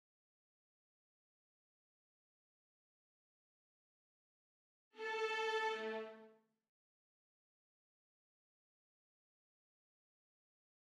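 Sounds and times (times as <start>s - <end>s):
violins playing: 5.0s - 6.3s.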